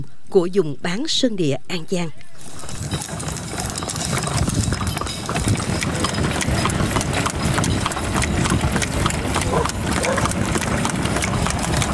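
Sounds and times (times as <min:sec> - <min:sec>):
speech: 0:00.0 - 0:02.9
faint noise: 0:00.0 - 0:04.4
hooves of a horse-drawn cart clip-clopping: 0:02.4 - 0:11.9.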